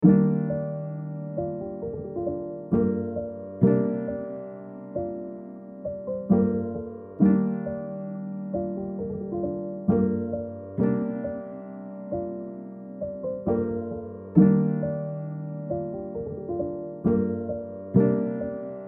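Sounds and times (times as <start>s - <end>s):
piano keys playing in A minor: 0.0s - 18.8s.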